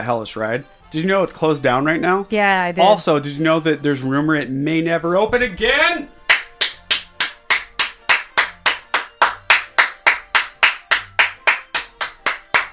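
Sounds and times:
speech: 0.0 - 6.2
steady rapid hand claps: 6.2 - 12.7.

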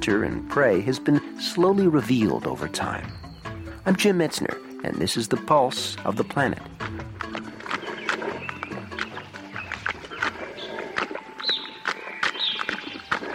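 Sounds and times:
speech: 0.0 - 3.2, 3.8 - 7.2
faint bird chirps: 3.0 - 3.8, 7.8 - 13.2
moose feeding, crunching and stripping vegetation: 6.1 - 13.3.

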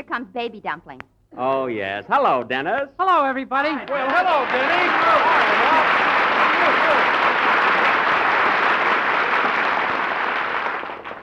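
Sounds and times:
speech: 0.1 - 7.2
audience applause greeting a performer's entrance: 3.8 - 11.2.

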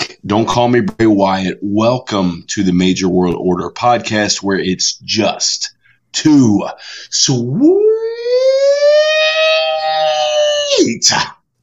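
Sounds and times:
speech: 0.2 - 9.3, 10.7 - 11.4
person imitating a siren: 7.4 - 10.8.

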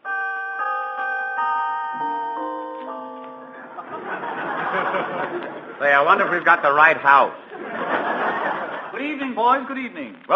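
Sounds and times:
melodic doorbell chime: 0.0 - 5.2
laughter: 3.6 - 9.1
speech: 4.7 - 7.7, 9.0 - 10.3.

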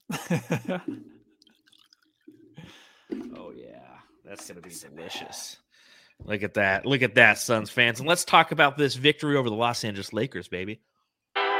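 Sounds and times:
laughter: 0.0 - 1.1
speech: 0.1 - 1.2, 3.6 - 5.6, 6.2 - 10.9
Scotch whisky pouring into a glass: 0.9 - 3.4.

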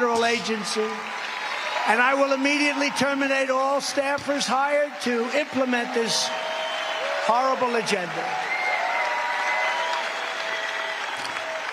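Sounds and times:
large crowd clapping and cheering after a speech: 0.0 - 11.7
speech: 0.4 - 6.4, 7.2 - 8.4
whistles from a crowd: 6.3 - 7.2, 8.4 - 11.5.

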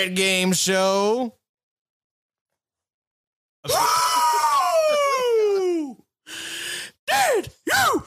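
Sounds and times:
speech: 0.0 - 1.4
person screaming as game intro: 3.6 - 6.0, 7.1 - 8.0.

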